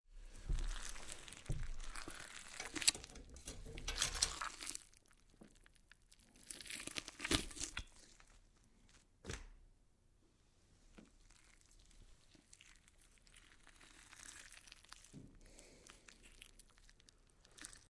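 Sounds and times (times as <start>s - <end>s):
meat squelching: 0.3s - 8.5s, 11.0s - 17.8s.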